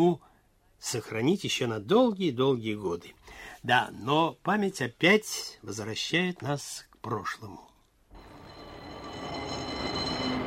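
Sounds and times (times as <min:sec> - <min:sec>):
speech: 0:00.0 - 0:00.2, 0:00.8 - 0:07.7
high whining tones of tram: 0:08.1 - 0:10.4
faint metallic squeals of tram: 0:08.2 - 0:10.4
tram car rumbling on rails: 0:08.2 - 0:10.4.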